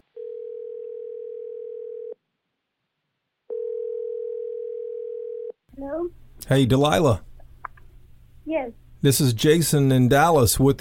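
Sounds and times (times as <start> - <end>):
phone line ringback tones on an outgoing call: 0.2 - 2.2, 3.5 - 5.6
speech: 5.8 - 7.3, 8.5 - 10.7.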